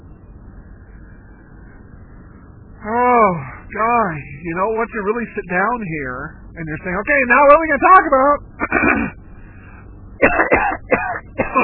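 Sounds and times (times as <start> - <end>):
speech: 2.8 - 9.2
harsh phlegmy coughing from congestion: 8.6 - 9.2, 10.2 - 11.6
throat clearing from congestion: 8.6 - 9.2, 10.2 - 11.6.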